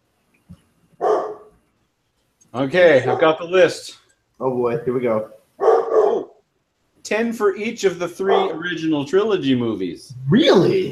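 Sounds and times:
black Labrador puppy barking: 1.0 - 1.5, 3.0 - 3.4, 5.6 - 6.4, 8.2 - 8.6
speech: 2.5 - 5.4, 7.1 - 10.9.

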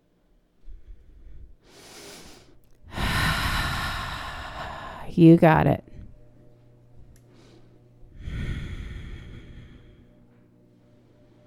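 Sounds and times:
deep yoga breathing with slow exhales during a stretching workout: 0.6 - 5.1, 7.2 - 11.4
speech: 5.1 - 5.9.

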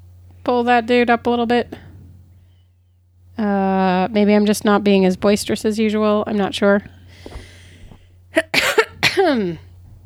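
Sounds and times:
low hum: 0.0 - 10.0
speech: 0.4 - 1.9, 3.4 - 7.3, 9.3 - 9.6
harsh raspy wheezy coughs: 7.2 - 9.6.

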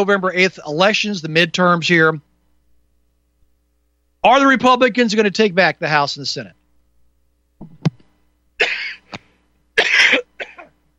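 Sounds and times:
speech: 0.0 - 2.3, 4.2 - 6.6
person clearing throat: 8.6 - 10.8
person coughing: 8.6 - 10.8.

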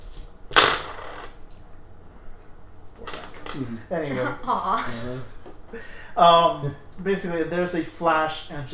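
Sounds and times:
dice rolled across a hard surface: 0.0 - 1.4
laughter: 3.5 - 5.5
speech: 3.6 - 8.7.

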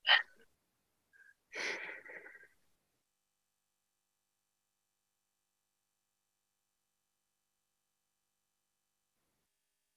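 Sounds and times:
person taking a deep breath: 1.5 - 2.5.

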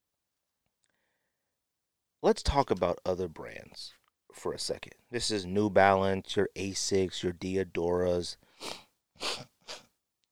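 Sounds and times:
speech: 2.2 - 9.8
person sniffing into the microphone: 8.4 - 9.9.

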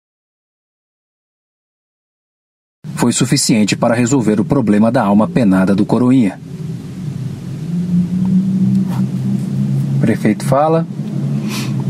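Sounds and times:
speech: 3.0 - 6.6, 10.1 - 11.0
old Saveiro pickup truck driving past: 6.3 - 11.8.

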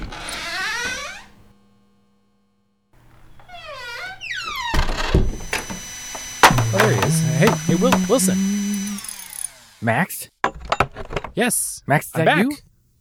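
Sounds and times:
door creaking open with squealing groans: 0.0 - 1.5, 3.0 - 9.0
solid door thunk: 4.6 - 8.4
speech: 7.8 - 8.5, 9.8 - 10.4, 11.4 - 12.7.

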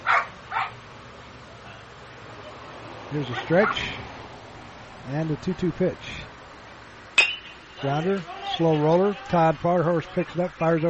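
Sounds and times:
three dogs barking at the same time during an amateur baseball game: 0.0 - 0.8, 3.2 - 4.0
speech: 3.1 - 4.1, 5.0 - 6.2, 7.8 - 10.8.

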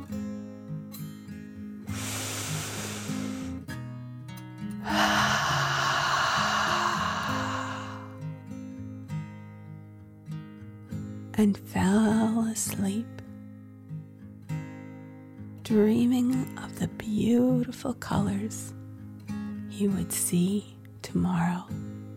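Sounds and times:
gentle music with sustained low tones: 0.0 - 22.1
deep slow breath drawn in and let out: 1.9 - 3.7, 4.8 - 8.3
speech: 11.4 - 13.2, 15.7 - 18.8, 19.8 - 21.8.

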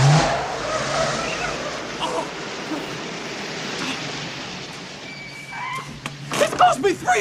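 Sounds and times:
tire squeal: 0.0 - 2.7, 5.0 - 6.4
car pulling away with engine roar: 0.0 - 7.2
speech: 6.8 - 7.2.

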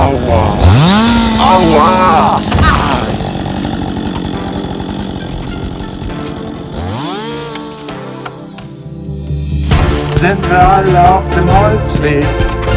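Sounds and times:
chainsaw cutting trees: 0.0 - 8.8
metallic clinks and rattles: 4.1 - 6.0
speech: 10.2 - 12.6.

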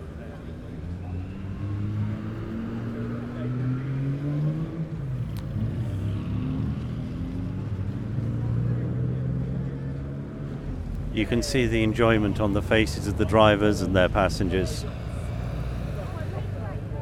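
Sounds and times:
vintage car engines rumbling during a classic car run in Farnham: 0.0 - 16.9
speech: 11.2 - 15.0.

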